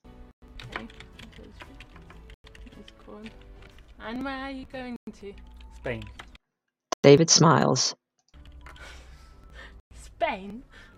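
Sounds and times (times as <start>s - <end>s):
someone typing on a computer keyboard: 0.6s - 4.5s, 5.2s - 6.4s, 8.4s - 9.0s
speech: 3.1s - 6.2s, 7.0s - 8.0s, 10.2s - 10.9s.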